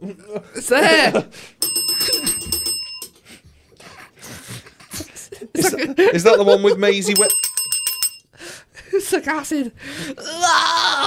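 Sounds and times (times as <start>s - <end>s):
laughter: 0.0s - 1.4s, 3.8s - 7.2s
speech: 0.1s - 2.3s, 5.7s - 7.4s, 9.1s - 11.0s
bright high-pitched bell ringing: 1.6s - 3.1s, 7.1s - 8.3s.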